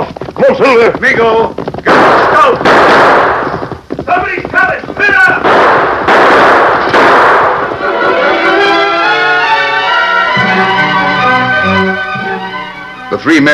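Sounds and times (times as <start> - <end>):
speech: 0.5 - 3.4, 13.1 - 13.5
gunshots fired by three startled men: 1.8 - 8.1
sustained tonal backdrop: 7.6 - 13.2.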